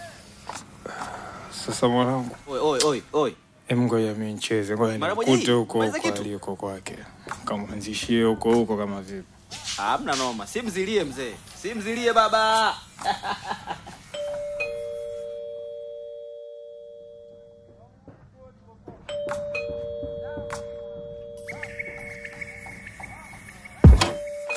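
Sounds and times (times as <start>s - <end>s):
speech: 1.6s - 13.8s
laughter: 13.0s - 14.1s
doorbell ringing with two-tone ding-dong chimes: 14.2s - 17.7s, 19.1s - 21.5s.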